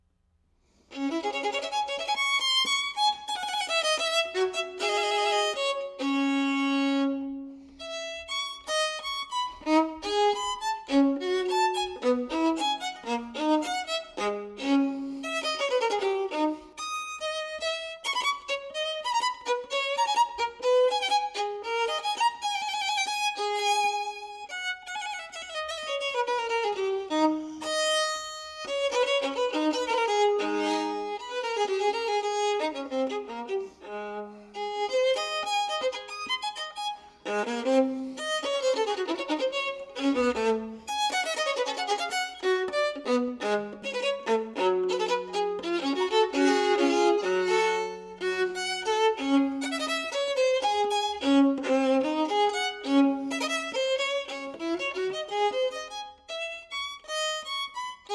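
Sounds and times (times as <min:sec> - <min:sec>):
Baroque Stradivarius violin playing: 0:00.7 - 0:58.1.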